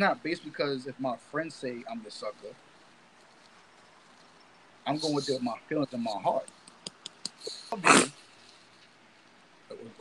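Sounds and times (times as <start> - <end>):
speech: 0.0 - 2.7, 4.8 - 6.6, 7.4 - 8.1, 9.8 - 9.9
soft rustle: 0.2 - 9.9
person with allergies sneezing: 7.4 - 8.2.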